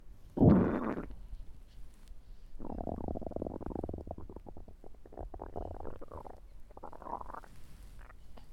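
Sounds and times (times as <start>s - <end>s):
baby pooping: 0.4s - 1.2s, 2.7s - 7.5s.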